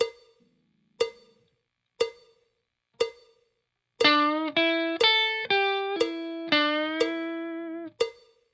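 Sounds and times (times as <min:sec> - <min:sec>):
slow blues guitar: 0:04.0 - 0:08.0.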